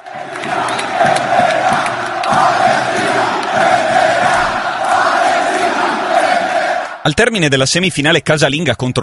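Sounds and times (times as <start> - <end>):
football fans chanting together in a stadium: 0.0 - 7.1
speech: 7.1 - 9.0.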